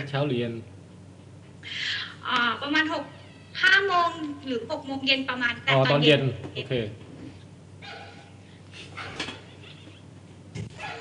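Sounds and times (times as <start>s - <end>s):
low hum: 0.0s - 11.0s
speech: 0.1s - 0.8s, 1.6s - 7.0s
dog barking: 7.8s - 9.5s, 10.7s - 11.0s.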